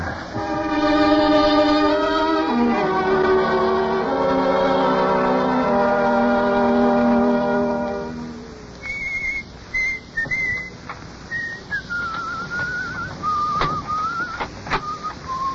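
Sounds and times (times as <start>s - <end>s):
steady hiss: 0.0s - 15.5s
person whistling a tune: 8.8s - 15.5s.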